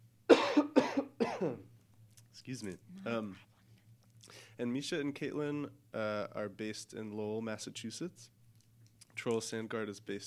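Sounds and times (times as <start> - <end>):
person coughing: 0.3 - 1.7
speech: 1.4 - 1.7, 2.4 - 3.5, 4.3 - 8.4, 9.2 - 10.2.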